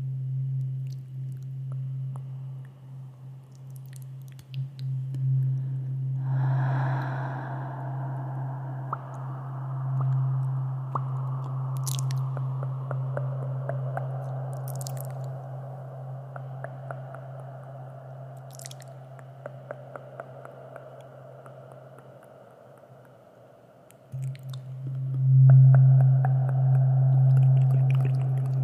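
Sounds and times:
steady low tuning fork hum: 0.0s - 3.7s, 4.6s - 28.6s
wet mouth clicks and smacks: 0.8s - 2.8s, 3.5s - 5.2s, 10.0s - 15.4s, 18.4s - 23.2s, 23.9s - 25.2s, 27.2s - 28.6s.

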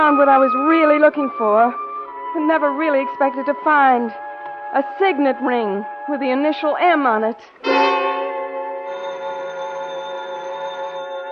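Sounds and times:
speech: 0.0s - 7.9s
telephone bell ringing with a bright metallic tone: 7.6s - 11.3s.

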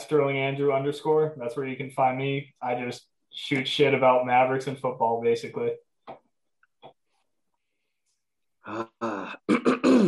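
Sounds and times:
speech: 0.1s - 5.8s
man clearing his throat: 9.3s - 10.0s.

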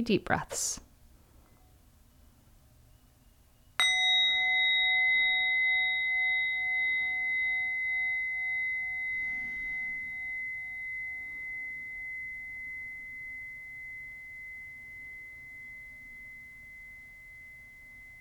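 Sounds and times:
speech: 0.0s - 0.8s
quiet low hum: 0.8s - 18.2s
meditation bell ringing: 3.8s - 18.2s.

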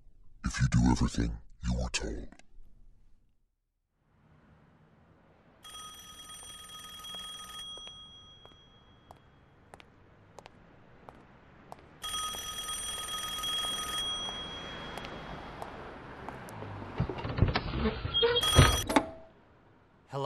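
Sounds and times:
speech: 0.7s - 2.4s
faint street background: 3.8s - 20.2s
payphone ringing in empty phone booth: 5.6s - 9.5s, 12.0s - 15.8s, 18.2s - 19.3s.

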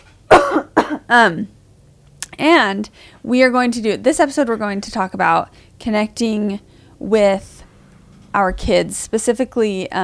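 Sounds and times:
rasping throat clearing from a throat tickle: 0.3s - 1.0s
person coughing from a throat tickle: 0.3s - 1.2s
speech: 1.1s - 1.6s, 2.4s - 7.5s, 8.3s - 10.0s.

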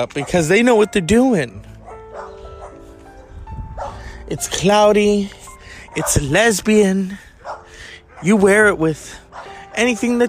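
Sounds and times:
dogs barking: 0.0s - 1.0s, 1.7s - 4.3s, 5.6s - 10.2s
speech: 0.0s - 1.7s, 4.3s - 5.4s, 6.0s - 7.3s, 8.2s - 9.2s, 9.8s - 10.2s.

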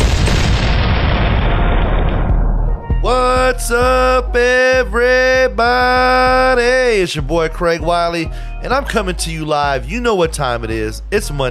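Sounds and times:
cannon firing boom after a touchdown: 0.0s - 3.4s
speech: 3.5s - 11.5s.

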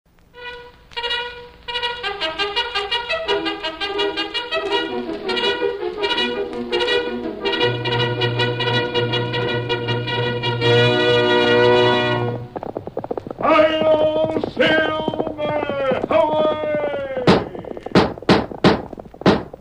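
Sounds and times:
sustained tonal music-like sound: 0.4s - 17.9s
galloping horse hoofbeats: 1.8s - 19.5s.

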